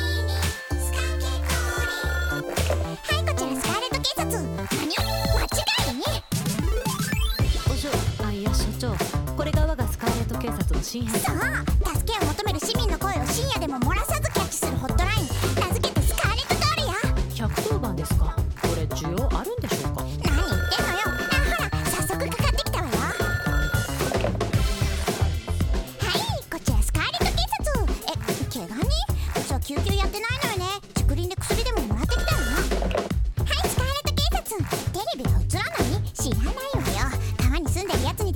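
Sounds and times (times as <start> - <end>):
upbeat densely layered pop song: 0.0 - 38.3
ringing phone-like synth tones: 20.3 - 24.4, 32.1 - 32.9.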